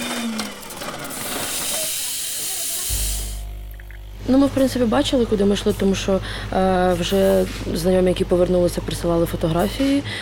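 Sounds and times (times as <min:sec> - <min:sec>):
coffee machine steam wand hissing: 0:00.2 - 0:03.4
speech: 0:04.3 - 0:10.1.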